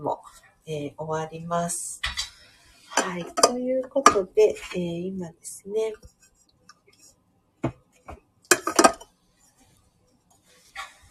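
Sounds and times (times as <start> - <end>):
speech: 0.7 - 2.1, 3.0 - 6.2
Cafua coffee bottle clinking as it is handled for warming: 8.5 - 9.0.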